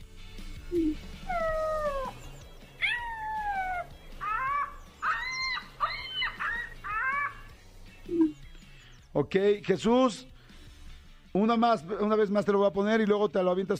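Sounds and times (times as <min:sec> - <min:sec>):
ostrich call: 0:00.7 - 0:08.4
speech: 0:09.2 - 0:10.3, 0:11.4 - 0:13.7.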